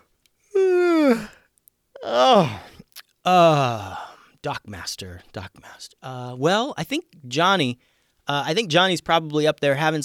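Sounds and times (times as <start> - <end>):
person giving a big drawn-out groaning yawn: 0.5 - 1.4, 2.0 - 4.2
speech: 2.3 - 2.6, 3.2 - 10.0.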